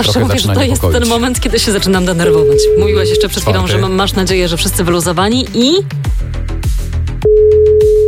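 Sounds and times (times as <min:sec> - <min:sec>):
speech: 0:00.0 - 0:06.3
telephone ringing tone of an unanswered call: 0:02.3 - 0:03.4, 0:07.3 - 0:08.0.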